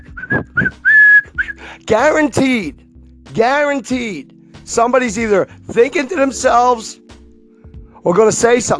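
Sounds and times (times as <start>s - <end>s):
short whistled notes forming a melody: 0.0s - 1.8s
speech: 1.9s - 7.0s, 8.0s - 8.7s.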